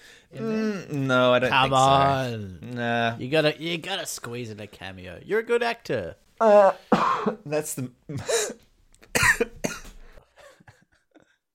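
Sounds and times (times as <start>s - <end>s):
speech: 0.3s - 8.6s
person coughing from laughing: 6.5s - 7.4s, 8.1s - 10.0s.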